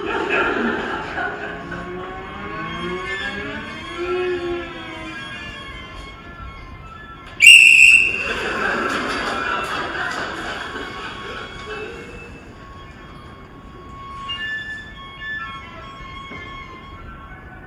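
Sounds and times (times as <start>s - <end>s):
laughter: 0.0s - 5.2s, 7.5s - 13.6s
mellow cello melody: 0.0s - 17.6s
shrill referee whistle blast: 7.4s - 8.5s.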